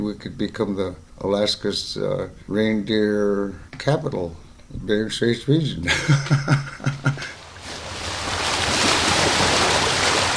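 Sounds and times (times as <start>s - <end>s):
speech: 0.0s - 7.4s
laughter: 5.8s - 7.4s
sea waves washing against the shoreline at Savonga on a sunny day: 7.4s - 10.3s.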